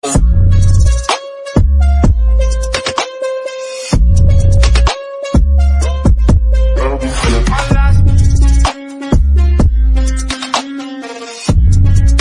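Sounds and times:
English background music: 0:00.0 - 0:12.1.

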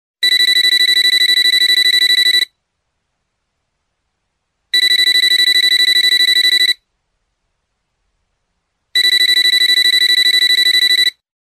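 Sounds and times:
long mobile phone beep musical tone ringtone: 0:00.2 - 0:02.5, 0:04.8 - 0:06.8, 0:09.0 - 0:11.2.

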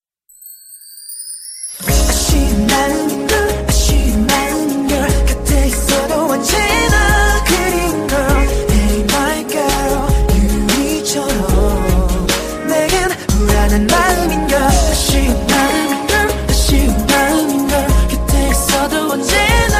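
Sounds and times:
romantic English love song: 0:00.8 - 0:19.7.

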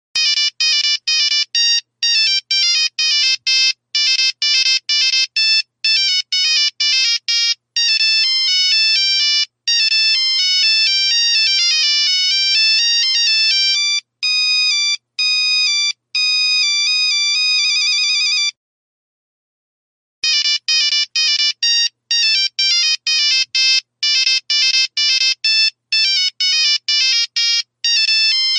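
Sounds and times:
very old classic phone ringtone: 0:00.2 - 0:18.6, 0:20.2 - 0:28.5.

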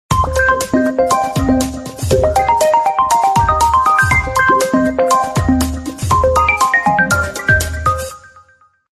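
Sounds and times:
funky SMS ringtone: 0:00.2 - 0:08.1.

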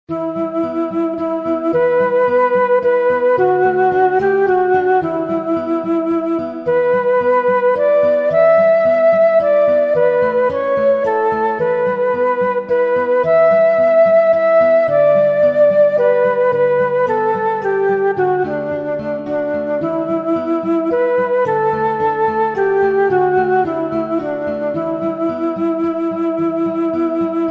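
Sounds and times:
peaceful flute music ringtone: 0:00.1 - 0:27.4.

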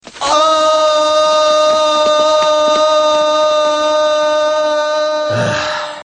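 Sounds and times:
long ooh sound: 0:00.2 - 0:06.0.

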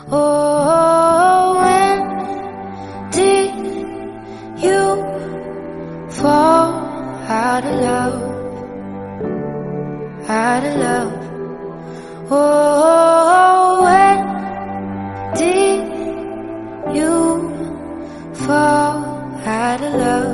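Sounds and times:
romantic love song ringtone: 0:00.0 - 0:20.3.

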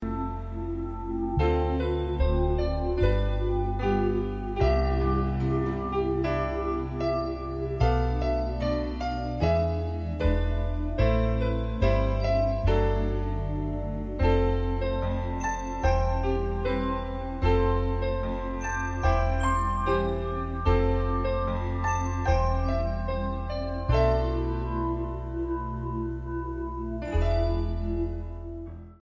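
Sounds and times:
instrumental piano ringtone: 0:00.0 - 0:29.0.

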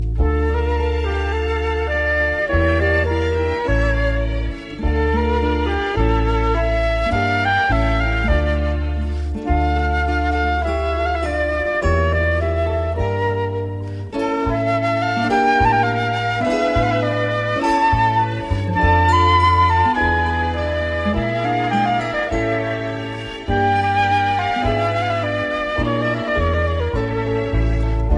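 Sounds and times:
flute ringtone: 0:00.2 - 0:28.1.

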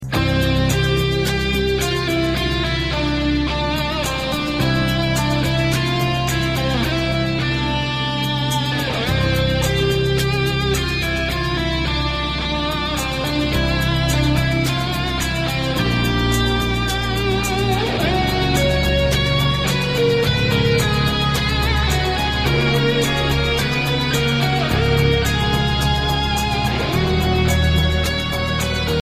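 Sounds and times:
English movie theme tone: 0:00.1 - 0:29.0.

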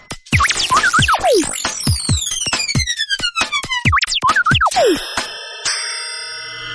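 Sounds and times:
electronic waves ringtone: 0:00.3 - 0:03.0, 0:03.7 - 0:05.8.

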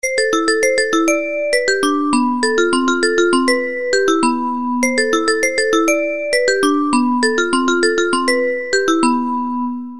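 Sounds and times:
simple call alert tone ringtone: 0:00.0 - 0:09.9.

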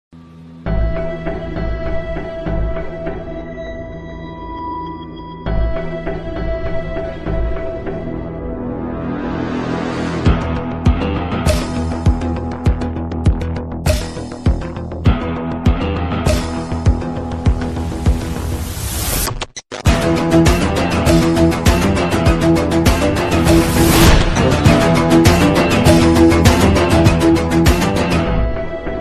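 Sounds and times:
rock background music: 0:00.2 - 0:09.3, 0:09.9 - 0:18.7, 0:19.8 - 0:29.0.

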